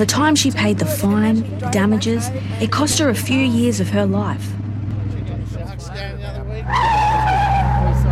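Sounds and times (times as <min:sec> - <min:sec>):
speech: 0:00.0 - 0:04.6
low car engine rumble: 0:00.0 - 0:08.1
car tires squealing around a corner: 0:06.6 - 0:08.1.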